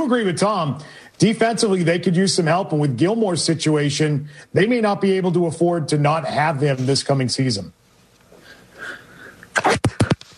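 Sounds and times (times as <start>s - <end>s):
speech: 0.0s - 7.8s
light dainty human sneeze: 8.5s - 10.3s.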